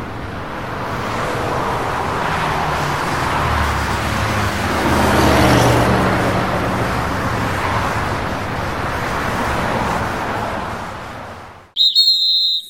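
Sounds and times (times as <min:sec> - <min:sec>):
traffic rumble with passing cars: 0:00.0 - 0:12.6
police officer blowing a whistle: 0:11.8 - 0:12.6.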